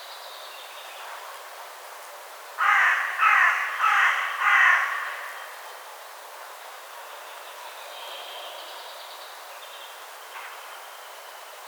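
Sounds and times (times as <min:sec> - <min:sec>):
Carrion crow Corvus corone rasping caws: 0:02.6 - 0:05.5.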